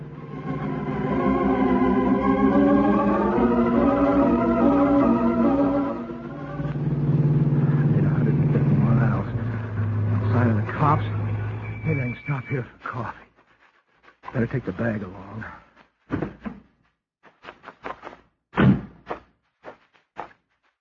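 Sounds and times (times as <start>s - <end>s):
car engine roaring while driven fast: 0.0s - 12.2s
speech: 14.4s - 16.3s.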